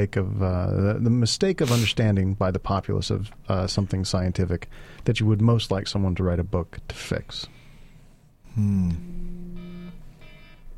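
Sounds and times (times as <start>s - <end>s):
speech: 0.0s - 7.6s, 8.6s - 9.3s
timer alarm electronic beeps: 9.0s - 10.6s.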